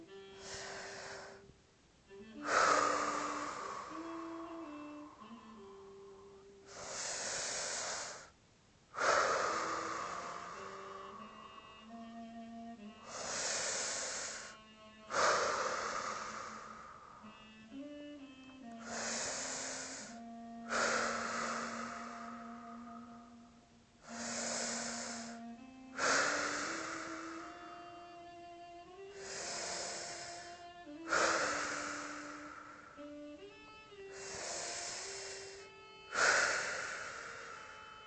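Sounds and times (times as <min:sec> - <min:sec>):
slow deep breaths in and out: 0:00.0 - 0:01.5, 0:02.1 - 0:38.0
soft sustained music: 0:00.0 - 0:08.3, 0:09.0 - 0:38.0.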